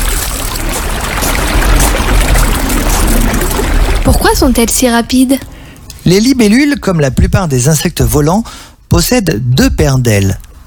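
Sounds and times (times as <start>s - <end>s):
river flowing with rushing, bubbling water: 0.0s - 4.5s
speech: 4.1s - 5.5s, 6.1s - 10.4s.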